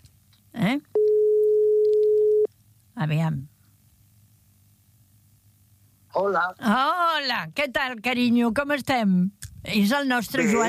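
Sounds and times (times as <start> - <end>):
speech: 0.6 - 1.0, 3.0 - 3.5, 6.2 - 10.6
telephone ringing tone for an incoming call: 1.0 - 2.5.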